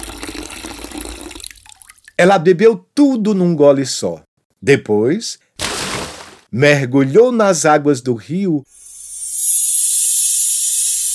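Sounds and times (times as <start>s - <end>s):
water pouring into a mug: 0.0s - 2.2s
speech: 2.2s - 5.4s, 6.5s - 8.8s.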